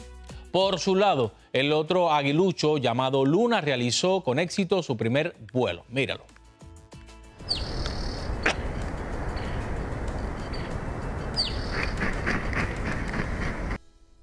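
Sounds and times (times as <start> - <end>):
speech: 0.5 - 6.3
young eagle high-pitched calls at nest: 7.4 - 9.7, 10.3 - 13.0
outdoor wind rush in Big Bear Valley: 7.4 - 13.8.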